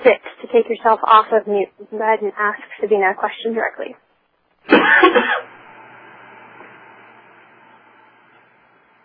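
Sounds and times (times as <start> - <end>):
speech: 0.0 - 4.0, 4.6 - 5.6
harsh cough on an unmuted phone line during a group call: 4.7 - 5.5.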